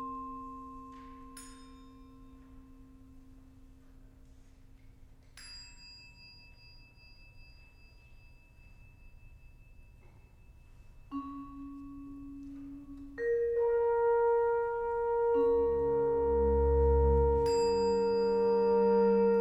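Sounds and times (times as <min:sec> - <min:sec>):
horn: 0:13.1 - 0:19.4
bass: 0:14.2 - 0:19.4.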